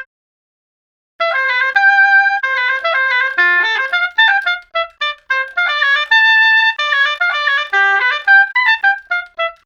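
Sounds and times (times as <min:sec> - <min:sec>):
oboe: 0:01.2 - 0:09.6.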